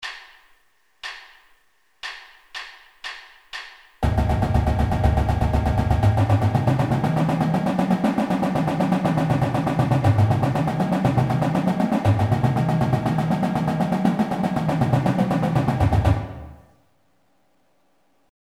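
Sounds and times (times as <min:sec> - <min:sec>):
fast legato marching drum: 0:04.0 - 0:16.7.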